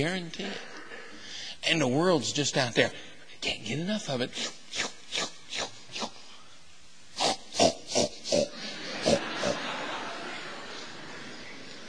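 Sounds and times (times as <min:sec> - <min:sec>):
speech: 0:00.0 - 0:00.7, 0:01.6 - 0:04.9
pigs oinking: 0:07.2 - 0:09.6
laughter: 0:08.5 - 0:11.8.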